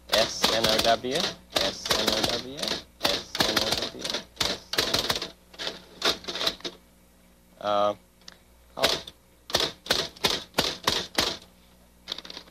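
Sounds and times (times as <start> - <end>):
typewriter keys clacking as a name is typed: 0.1 - 6.8, 8.8 - 11.4, 12.1 - 12.4
speech: 0.3 - 2.9, 3.9 - 4.3, 7.6 - 8.1.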